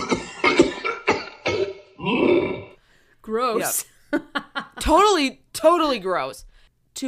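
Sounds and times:
man with bronchitis coughing: 0.0 - 2.7
speech: 3.3 - 7.0.

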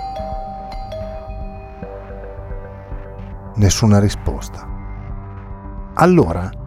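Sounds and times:
doorbell ringing with sustained electronic tone: 0.0 - 2.8
speech: 3.6 - 4.7, 6.0 - 6.6.

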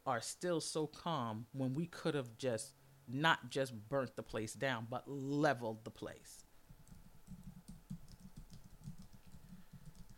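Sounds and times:
speech: 0.0 - 6.5
rapid typing on a computer keyboard: 6.8 - 10.1.

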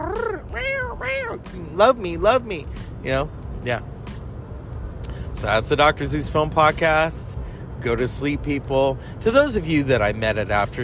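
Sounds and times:
cat meowing: 0.0 - 1.6
speech: 1.0 - 3.9, 5.4 - 10.8.

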